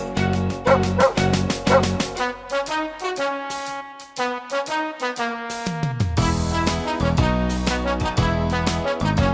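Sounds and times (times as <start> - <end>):
steady musical backing: 0.0 - 9.3
several dogs barking and yipping: 0.7 - 2.1.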